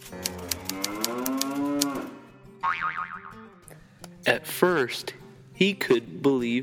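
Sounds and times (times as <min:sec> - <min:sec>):
sharp evenly spaced clicks: 0:00.0 - 0:02.0
cow mooing: 0:00.0 - 0:02.4
wobbly springy boing: 0:02.6 - 0:03.5
speech: 0:04.2 - 0:06.6.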